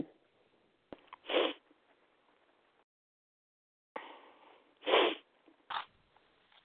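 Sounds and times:
person sneezing: 0:01.3 - 0:01.6, 0:04.8 - 0:05.2.

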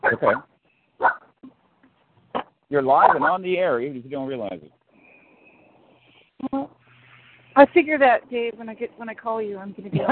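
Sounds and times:
puppy barking: 0:00.0 - 0:01.2, 0:02.9 - 0:03.6
puppy yipping: 0:00.0 - 0:01.2, 0:03.0 - 0:03.4
speech: 0:00.1 - 0:00.5, 0:02.7 - 0:04.8, 0:07.6 - 0:10.1.

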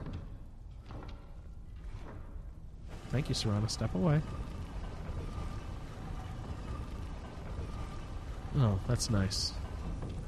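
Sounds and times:
heavy stone door grinding downward: 0:00.7 - 0:10.2
speech: 0:03.1 - 0:04.5, 0:08.6 - 0:09.6.

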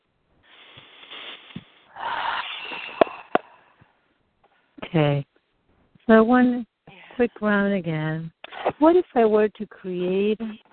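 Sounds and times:
slow deep breathing during a breathing exercise: 0:00.4 - 0:04.0
speech: 0:04.9 - 0:05.3, 0:06.1 - 0:10.6.

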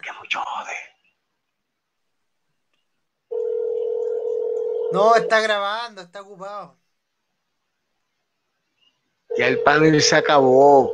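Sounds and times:
steady telephone call tone: 0:03.3 - 0:05.3, 0:09.3 - 0:10.9
speech: 0:04.9 - 0:06.8, 0:09.4 - 0:10.9.

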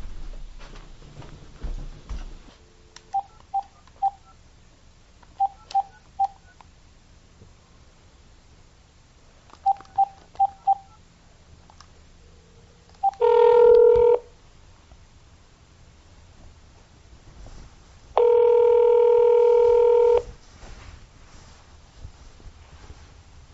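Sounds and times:
longer louder steady telephone tones: 0:02.7 - 0:04.4, 0:05.3 - 0:06.6, 0:09.6 - 0:11.1, 0:13.0 - 0:14.4, 0:18.1 - 0:20.4
telephone keypad tones dialing a home phone number: 0:03.1 - 0:04.3, 0:05.3 - 0:06.6, 0:09.6 - 0:11.0, 0:13.0 - 0:14.3, 0:18.2 - 0:20.3.

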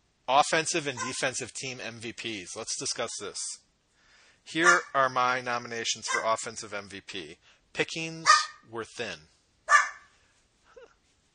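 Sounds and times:
speech: 0:00.3 - 0:03.6, 0:04.4 - 0:09.3
dog barking: 0:01.0 - 0:01.2, 0:04.6 - 0:04.9, 0:06.1 - 0:06.3, 0:08.2 - 0:08.6, 0:09.7 - 0:10.1.

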